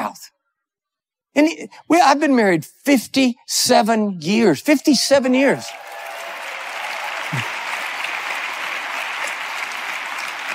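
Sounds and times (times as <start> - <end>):
speech: 1.4 - 5.9
crowd applauding: 5.5 - 10.5.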